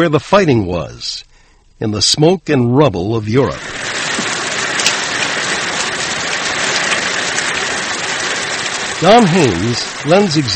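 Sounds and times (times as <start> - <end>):
speech: 0.0 - 3.9, 9.0 - 10.5
steady rain pattering on a surface: 3.4 - 10.5.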